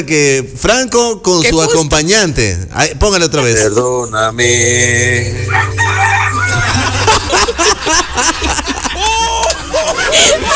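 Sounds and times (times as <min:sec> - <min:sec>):
speech: 0:00.0 - 0:06.8
people's voices: 0:03.4 - 0:10.5
rooster crowing: 0:05.5 - 0:07.0
people laughing: 0:05.5 - 0:10.5.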